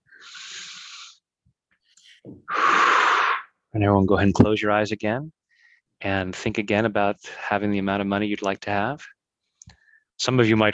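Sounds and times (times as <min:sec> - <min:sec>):
person taking a deep breath during a guided meditation session: 0:00.0 - 0:01.2, 0:02.1 - 0:03.5
speech: 0:03.7 - 0:05.4, 0:06.0 - 0:09.2, 0:10.2 - 0:10.7.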